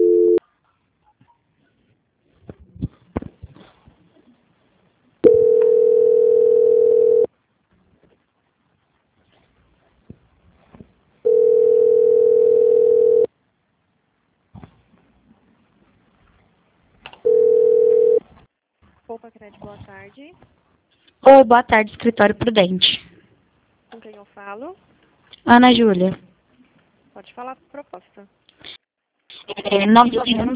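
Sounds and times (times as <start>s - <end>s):
telephone line tones during call transfer: 0.0s - 0.4s, 5.2s - 7.3s, 11.2s - 13.3s, 17.2s - 18.2s
speech: 19.5s - 20.6s, 21.2s - 23.0s, 24.4s - 26.2s, 27.2s - 28.4s, 29.5s - 30.5s.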